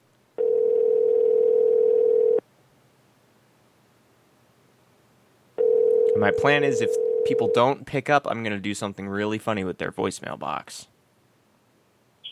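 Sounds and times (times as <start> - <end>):
telephone dial tone during an outgoing call: 0.4 - 2.4, 5.6 - 7.6
speech: 6.2 - 10.9.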